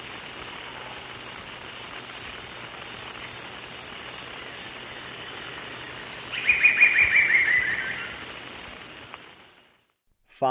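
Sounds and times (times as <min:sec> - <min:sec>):
background hum: 0:00.0 - 0:10.4
Amazonian Barred Woodcreeper calling in the eastern lowlands of South America: 0:06.3 - 0:08.3.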